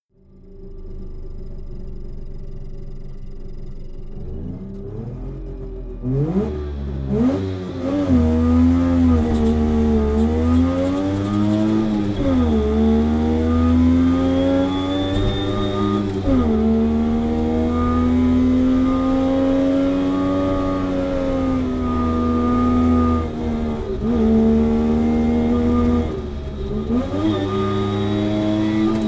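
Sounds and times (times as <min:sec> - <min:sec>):
Saab 92 car interior while driving: 0:00.4 - 0:29.0.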